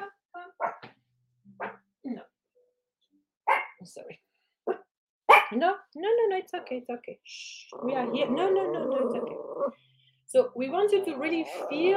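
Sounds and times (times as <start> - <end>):
dog barking: 0.6 - 0.8, 1.6 - 1.8, 3.5 - 3.8, 4.7 - 5.6
speech: 3.8 - 4.3, 5.5 - 11.9.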